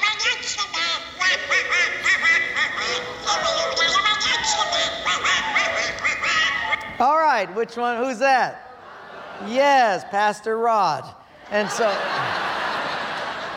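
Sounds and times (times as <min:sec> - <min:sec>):
cartoon duck character's raspy quacking voice: 0:00.0 - 0:06.9
laughter: 0:00.8 - 0:06.8, 0:08.6 - 0:10.2, 0:11.4 - 0:13.5
speech: 0:07.0 - 0:08.6, 0:09.4 - 0:12.4.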